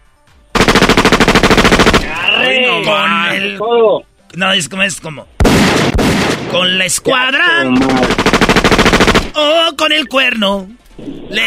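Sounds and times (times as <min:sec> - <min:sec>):
automatic gunfire bursts: 0:00.6 - 0:02.1, 0:05.4 - 0:06.4, 0:08.0 - 0:09.4
speech: 0:02.5 - 0:05.3, 0:06.5 - 0:08.6, 0:09.4 - 0:11.4.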